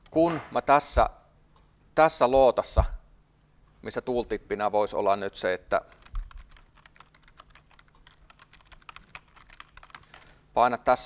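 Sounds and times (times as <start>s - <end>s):
speech: 0.1s - 1.2s, 2.0s - 3.0s, 3.8s - 6.0s, 10.6s - 11.0s
faint rapid typing on a computer keyboard while coding: 5.9s - 10.2s.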